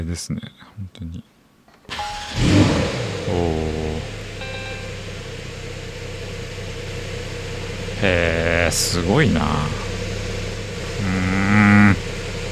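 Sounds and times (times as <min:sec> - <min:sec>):
speech: 0:00.0 - 0:01.3, 0:01.9 - 0:04.1, 0:08.0 - 0:09.8
Porsche sports car engine revving then idling: 0:02.0 - 0:12.5
person exclaiming: 0:03.3 - 0:04.1, 0:08.0 - 0:09.9, 0:10.9 - 0:12.0.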